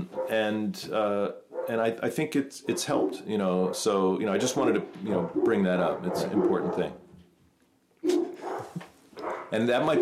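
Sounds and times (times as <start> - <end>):
dog barking excitedly: 0.1 - 0.4, 1.5 - 1.8, 2.7 - 4.0, 5.1 - 7.0, 8.0 - 10.0
speech: 0.3 - 7.0, 9.5 - 10.0.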